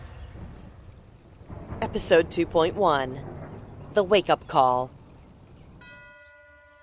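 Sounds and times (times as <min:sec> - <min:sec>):
speech: 0:01.9 - 0:03.3, 0:03.9 - 0:05.0
doorbell with bright metallic chime: 0:05.8 - 0:06.8.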